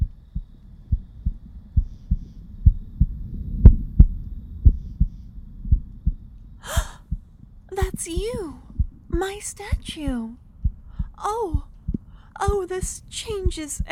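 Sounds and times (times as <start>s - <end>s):
brief breathy rush: 0.0s - 9.1s, 9.8s - 12.4s
heartbeat of a statue thumping low and muffled: 0.0s - 13.9s
speech: 8.0s - 8.6s, 9.2s - 10.4s, 11.2s - 11.7s, 12.4s - 13.9s.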